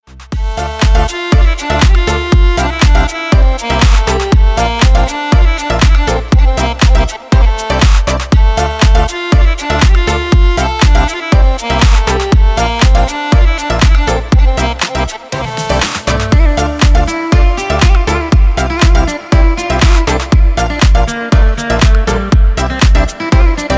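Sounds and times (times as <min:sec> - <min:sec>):
violin effect: 0:00.2 - 0:23.7.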